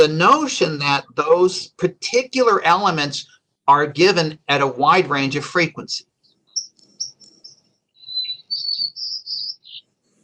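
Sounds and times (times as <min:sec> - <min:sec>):
speech: 0:00.0 - 0:06.1
white-crowned sparrow song played back: 0:06.2 - 0:10.0.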